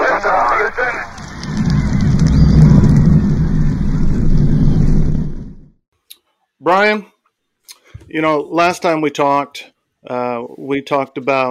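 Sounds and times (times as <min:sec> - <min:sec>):
rocket main engines igniting at launch: 0:00.0 - 0:05.8
speech: 0:06.6 - 0:07.1, 0:08.1 - 0:11.4.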